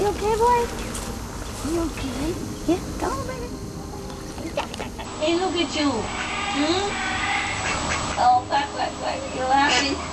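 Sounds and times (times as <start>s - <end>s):
noise: 0.0s - 10.1s
speech: 0.2s - 0.9s, 1.6s - 3.7s, 4.6s - 7.2s, 8.2s - 10.1s
duck quacking: 6.0s - 8.4s, 9.2s - 10.1s.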